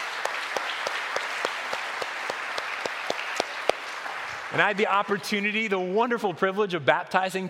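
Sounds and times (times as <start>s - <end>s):
audience applause: 0.0s - 6.0s
speech: 4.5s - 7.4s.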